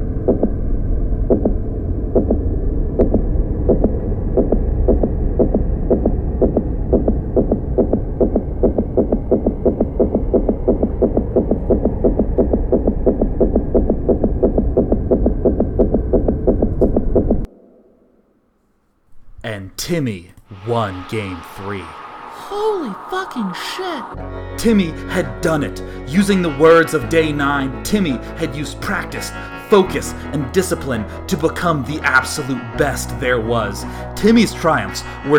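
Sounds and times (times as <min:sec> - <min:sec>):
low droning hum: 0:00.0 - 0:19.8, 0:20.5 - 0:26.0
heartbeat of a player thumping: 0:00.1 - 0:00.6, 0:01.2 - 0:17.5
speech: 0:19.9 - 0:22.0, 0:22.6 - 0:35.3.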